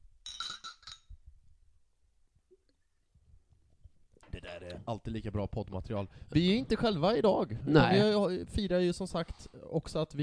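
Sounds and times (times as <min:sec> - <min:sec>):
glasses clinking during a toast: 0:00.3 - 0:01.1
speech: 0:04.6 - 0:10.2.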